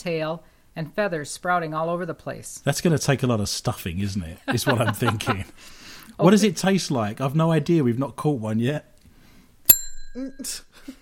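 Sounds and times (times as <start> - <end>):
speech: 0.0 - 8.9, 10.1 - 10.9
laughter: 4.4 - 5.6
small bell struck once: 9.7 - 10.7.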